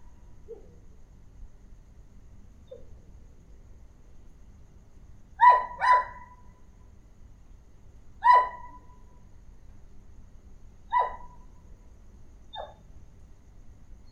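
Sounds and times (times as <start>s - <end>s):
quiet low background hum: 0.0s - 14.1s
small dog barking: 5.4s - 6.5s, 8.2s - 9.0s, 10.9s - 11.4s, 12.6s - 12.8s.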